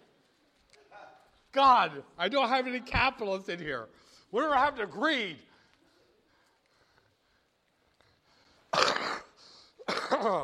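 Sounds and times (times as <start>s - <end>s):
speech: 1.5s - 5.5s, 10.2s - 10.4s
coughing and throat clearing: 8.7s - 10.4s.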